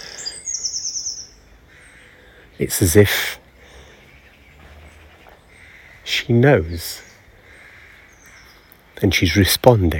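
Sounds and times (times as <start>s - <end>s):
bird calling with a high bright warbling trill: 0.0s - 2.2s, 3.8s - 8.7s
speech: 2.6s - 3.4s, 6.3s - 7.1s, 9.0s - 9.9s.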